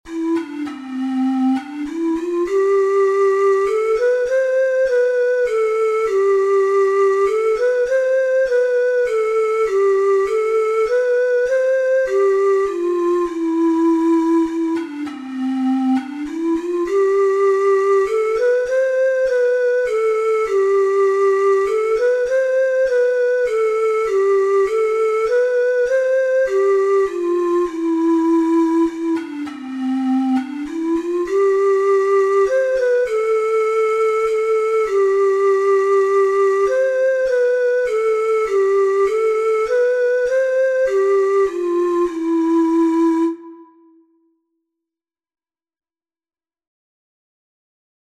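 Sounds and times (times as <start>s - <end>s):
four-hole ocarina melody: 0.0s - 44.3s.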